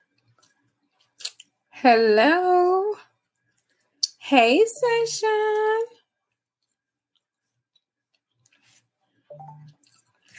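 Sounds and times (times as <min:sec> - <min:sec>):
speech: 0:01.8 - 0:02.6, 0:04.3 - 0:05.9
phone notification alerts: 0:09.3 - 0:09.8.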